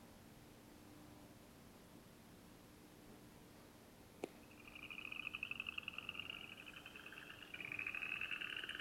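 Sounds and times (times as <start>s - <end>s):
southeastern chorus frog giving rapid rising trills: 4.4s - 8.7s.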